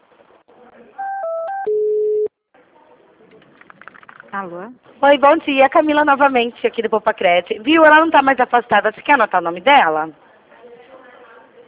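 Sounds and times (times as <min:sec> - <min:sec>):
telephone line beeps as a call is transferred: 0:01.0 - 0:02.3
speech: 0:04.3 - 0:10.2.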